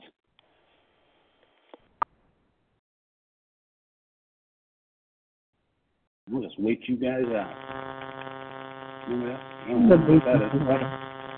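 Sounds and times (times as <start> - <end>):
speech: 6.3 - 7.7, 9.1 - 11.1
steady electrical buzz through a phone line: 7.0 - 11.3
garbled indistinct voices on a phone line: 9.0 - 11.1.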